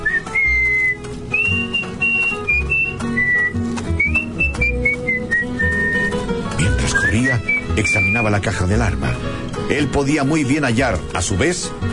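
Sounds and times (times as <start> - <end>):
person whistling a melodic tune: 0.0 - 6.1, 6.8 - 8.2
speech: 7.8 - 11.9.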